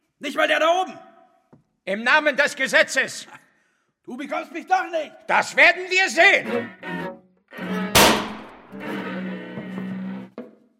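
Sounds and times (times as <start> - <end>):
speech: 0.2 - 1.1, 1.8 - 3.4, 4.0 - 7.1
gunshot: 8.0 - 8.7.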